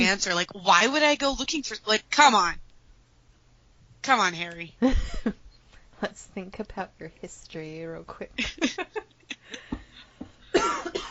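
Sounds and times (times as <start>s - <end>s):
speech: 0.0s - 2.6s, 4.0s - 5.4s, 6.0s - 9.8s
person coughing: 10.5s - 11.1s.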